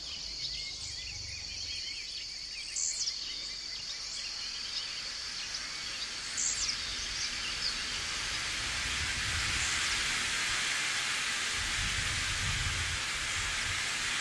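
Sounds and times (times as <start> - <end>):
faint insect drone: 0.0 - 14.2
heavy tropical rain pouring onto trees: 5.2 - 14.2.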